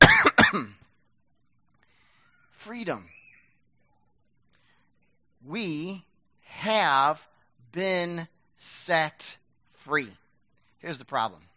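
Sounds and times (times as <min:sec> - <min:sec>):
person coughing into sleeve: 0:00.0 - 0:00.8
speech: 0:02.7 - 0:03.2, 0:05.4 - 0:10.2, 0:10.8 - 0:11.5.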